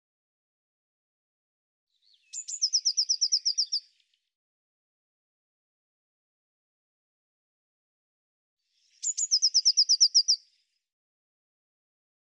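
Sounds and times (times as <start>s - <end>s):
Eurasian blue tit singing trills: 2.0s - 3.9s, 9.0s - 10.4s.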